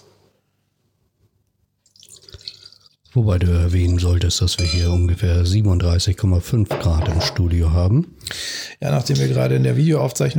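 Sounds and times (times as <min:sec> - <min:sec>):
white wine poured into a glass in a studio: 0:01.9 - 0:02.9
speech: 0:03.1 - 0:10.3.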